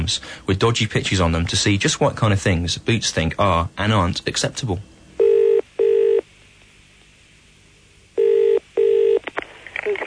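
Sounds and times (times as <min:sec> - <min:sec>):
speech: 0:00.0 - 0:05.0
telephone double-buzz ringing tone heard down the line: 0:05.2 - 0:06.2, 0:08.2 - 0:09.2.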